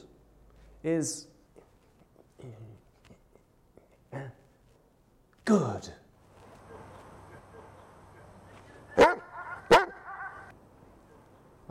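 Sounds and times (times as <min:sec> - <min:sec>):
speech: 0:00.8 - 0:01.3, 0:05.5 - 0:06.0
dog barking: 0:09.0 - 0:10.5.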